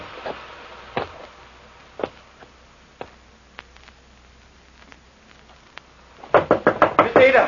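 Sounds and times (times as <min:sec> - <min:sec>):
loud insistent knocking on a door: 0:06.3 - 0:07.3.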